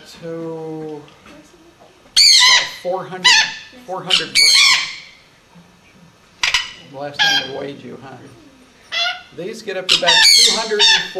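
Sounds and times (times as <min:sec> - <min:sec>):
speech: 0:00.2 - 0:01.3, 0:02.8 - 0:04.9, 0:07.0 - 0:08.4, 0:09.3 - 0:11.1
female Patagonian conure squawking: 0:02.2 - 0:05.3, 0:06.4 - 0:07.7, 0:08.5 - 0:11.1.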